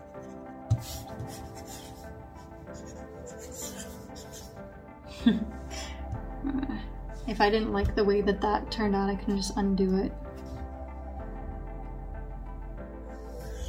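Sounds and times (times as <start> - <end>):
stylus writing across an e-ink tablet screen: 0.2 - 4.6, 13.2 - 13.6
speech: 0.8 - 1.4, 5.2 - 5.5, 7.4 - 10.2.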